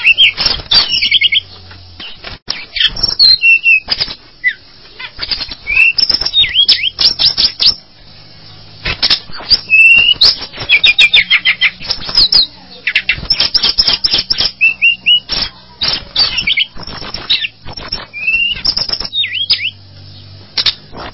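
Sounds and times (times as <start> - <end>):
bird song with looping whistled notes and a short steady whistle: 0.0 - 7.8, 8.6 - 21.1.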